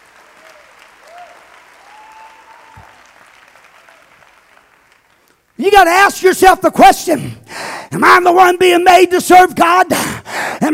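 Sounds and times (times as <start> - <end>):
church audience clapping in praise: 0.0 - 5.8
faint whoops or voices: 0.3 - 3.1
speech: 5.6 - 10.1.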